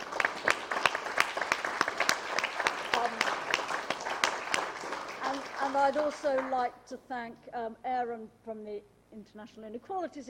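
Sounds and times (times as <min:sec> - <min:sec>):
audience applause: 0:00.0 - 0:06.6
speech: 0:05.7 - 0:10.2.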